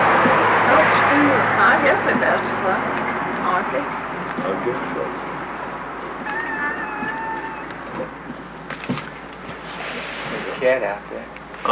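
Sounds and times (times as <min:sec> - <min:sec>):
faint voices murmuring: 0:00.0 - 0:11.7
steady breeze: 0:00.0 - 0:11.7
speech: 0:01.7 - 0:05.4, 0:10.6 - 0:11.7
cat meowing outdoors: 0:06.1 - 0:08.7.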